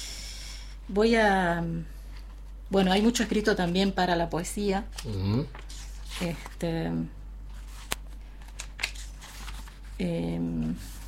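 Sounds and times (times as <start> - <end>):
speech: 0.9 - 2.0, 2.7 - 7.2, 10.0 - 11.0
poetry book pages being turned: 4.9 - 6.6, 7.5 - 11.0.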